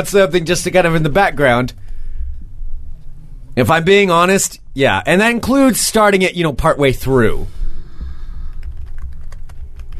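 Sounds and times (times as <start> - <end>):
speech: 0.0 - 1.8, 3.6 - 7.6
low steady hum: 0.0 - 9.9
typing on a computer keyboard: 8.5 - 9.9.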